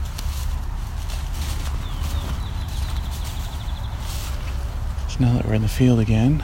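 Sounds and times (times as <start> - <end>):
clopping hoof-like footsteps: 0.0 - 5.1
steady low rumbling: 0.0 - 6.4
red-winged blackbird call: 1.5 - 4.5
speech: 5.2 - 6.4.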